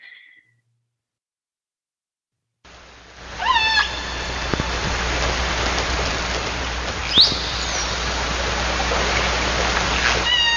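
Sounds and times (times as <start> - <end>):
steady hiss: 2.7 - 10.5
orca harmonic call: 3.2 - 10.5.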